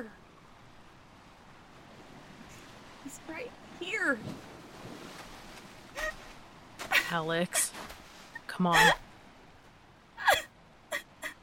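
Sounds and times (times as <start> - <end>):
waves washing at the shoreline: 0.0 - 9.7
faint wind hiss: 0.0 - 11.4
speech: 3.2 - 4.5, 7.1 - 7.9, 8.6 - 9.0.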